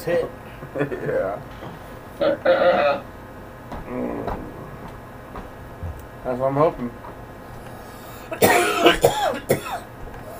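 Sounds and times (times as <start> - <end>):
speech: 0.0 - 4.5, 6.2 - 7.1, 8.3 - 8.7
harsh hacking coughs from people smoking marijuana: 8.3 - 10.3.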